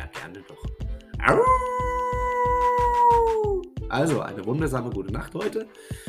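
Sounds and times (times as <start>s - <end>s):
speech: 0.3s - 1.6s, 4.0s - 6.0s
person imitating a wolf howl: 1.2s - 3.7s.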